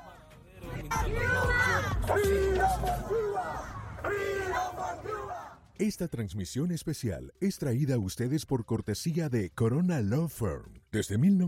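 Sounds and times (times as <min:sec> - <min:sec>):
hubbub of many voices: 0:00.0 - 0:05.7
street protesters chanting slogans outside courthouse: 0:00.0 - 0:05.8
speech: 0:05.8 - 0:11.4.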